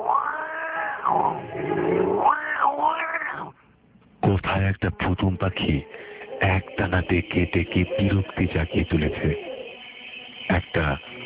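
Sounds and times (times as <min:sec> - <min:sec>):
black cat yowling loudly behind a house: 0:00.0 - 0:03.6
speech: 0:01.1 - 0:02.3, 0:04.5 - 0:09.5, 0:10.5 - 0:11.1.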